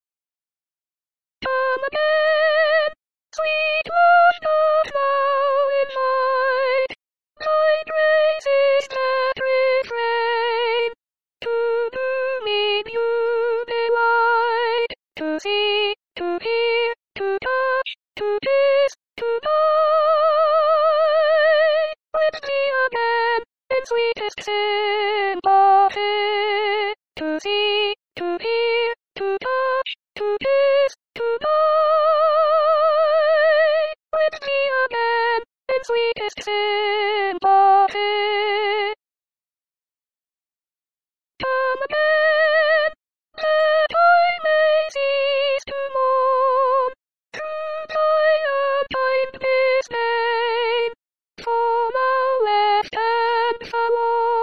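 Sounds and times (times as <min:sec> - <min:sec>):
soprano singing: 0:01.5 - 0:39.0, 0:41.4 - 0:54.4.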